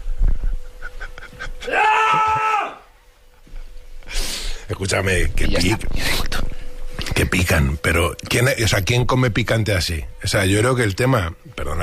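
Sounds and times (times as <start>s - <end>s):
laughter: 0.7s - 2.5s
man screaming in frustration: 1.6s - 2.9s
speech: 4.8s - 6.4s, 7.2s - 11.8s.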